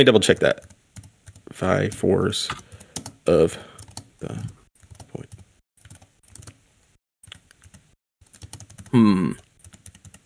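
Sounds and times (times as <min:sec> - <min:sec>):
speech: 0:00.0 - 0:00.8, 0:01.5 - 0:04.6, 0:08.9 - 0:09.4
typing on a computer keyboard: 0:00.2 - 0:06.6, 0:07.2 - 0:10.2.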